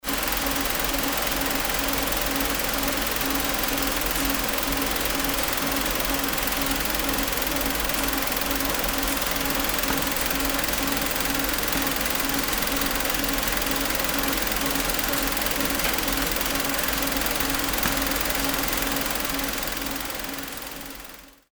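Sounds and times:
winding machine: 0.0s - 21.4s.

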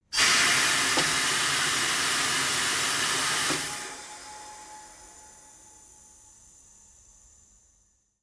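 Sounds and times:
tire changing machine hydraulic release: 0.2s - 5.0s.

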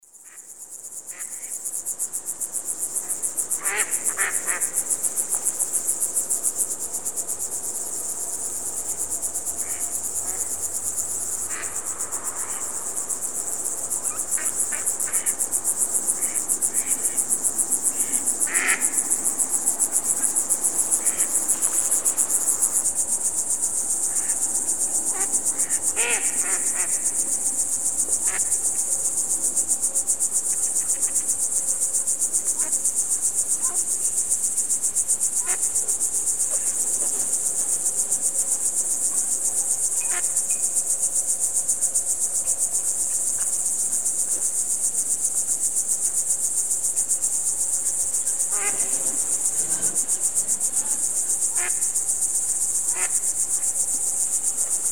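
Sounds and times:
crickets: 0.0s - 54.9s
frogs: 0.0s - 54.9s
ducks: 18.0s - 18.8s.

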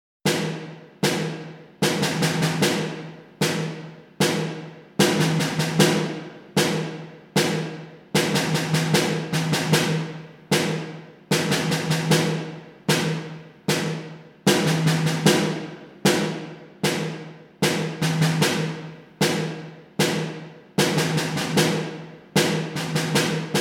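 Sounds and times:
military drum groove: 0.2s - 23.6s.

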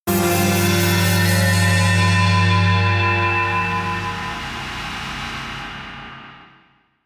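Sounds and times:
high synth slice: 0.1s - 5.9s
drones: 0.1s - 6.4s.

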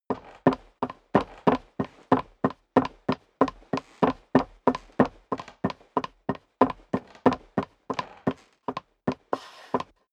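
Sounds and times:
dress boots walking on creaking wood: 0.1s - 9.9s.

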